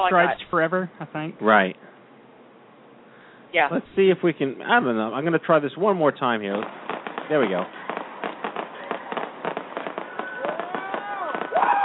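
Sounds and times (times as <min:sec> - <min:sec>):
speech: 0:00.0 - 0:01.9, 0:03.5 - 0:07.8
illegal fireworks exploding outside: 0:03.9 - 0:11.8
fireworks whistling: 0:06.3 - 0:11.8.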